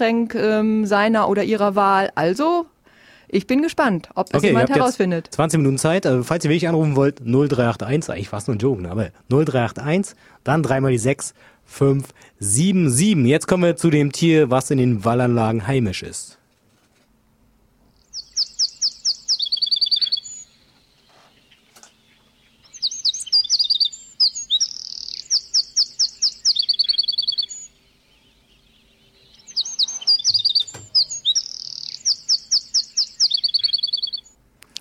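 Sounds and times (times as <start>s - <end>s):
speech: 0.0s - 2.7s, 3.3s - 16.4s
single bird singing with chirps and trills: 17.9s - 34.4s.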